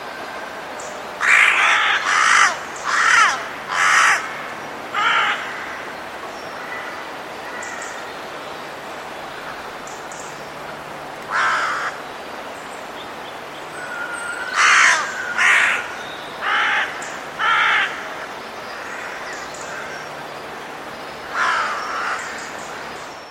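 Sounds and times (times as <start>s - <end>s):
steady background hiss: 0.0s - 23.3s
bird cawing in harsh crow-like calls: 1.2s - 8.0s, 11.3s - 12.0s, 13.8s - 20.2s, 21.3s - 22.8s.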